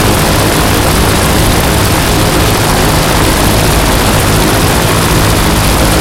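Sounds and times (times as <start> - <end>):
Bearcat engines: 0.0 - 6.0.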